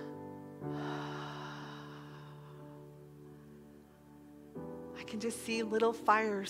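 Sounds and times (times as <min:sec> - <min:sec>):
roomful of people taking a deep breath in and out: 0:00.0 - 0:03.9
soft sustained music: 0:00.0 - 0:06.4
speech: 0:05.0 - 0:06.4.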